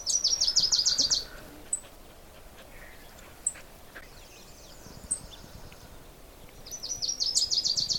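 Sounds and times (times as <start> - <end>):
Wilson's warbler singing a rapid chattering series of sharp chips: 0.0 - 7.9
faint chirps from other birds: 0.0 - 7.9.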